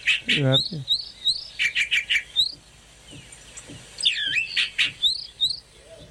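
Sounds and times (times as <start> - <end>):
recorded calandria mockingbird song played in a car: 0.0 - 6.0.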